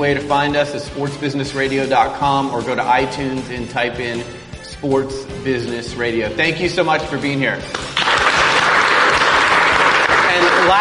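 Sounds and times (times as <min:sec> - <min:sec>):
speech: 0:00.0 - 0:08.0
audience applause: 0:07.8 - 0:10.7.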